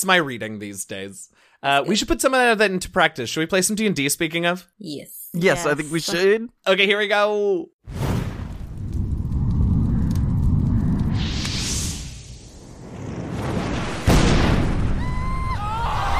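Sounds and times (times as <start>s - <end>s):
speech: 0.0s - 8.0s
loud blast: 7.8s - 15.6s
rumbling explosions: 7.8s - 15.6s
fire roaring: 7.8s - 16.1s.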